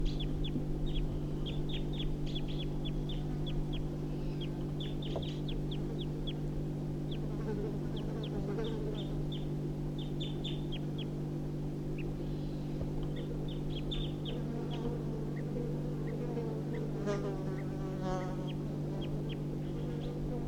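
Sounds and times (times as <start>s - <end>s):
steady low droning hum: 0.0s - 20.4s
wild birds giving short sharp alarm calls: 0.1s - 6.4s, 7.9s - 11.1s, 13.1s - 14.4s.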